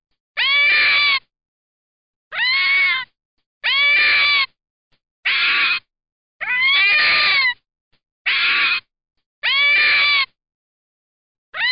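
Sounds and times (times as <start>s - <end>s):
red fox tonal nasal wailing call: 0.4s - 1.2s, 2.3s - 3.0s, 3.6s - 4.5s, 5.2s - 5.8s, 6.4s - 7.6s, 8.3s - 10.3s, 11.5s - 11.7s.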